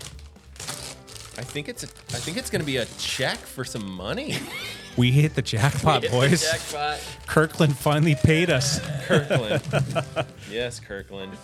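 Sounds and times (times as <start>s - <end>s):
candy cane gift wrapping paper crinkling and tearing while unwrapping: 0.0s - 4.8s, 5.5s - 10.4s
speech: 1.4s - 11.4s
laughter: 4.2s - 11.4s.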